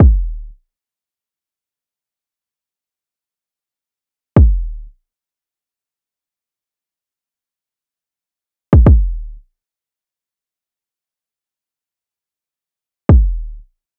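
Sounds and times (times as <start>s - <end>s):
kick drum loop at 110 BPM: 0.0s - 0.4s, 4.4s - 4.7s, 8.8s - 9.2s, 13.1s - 13.5s.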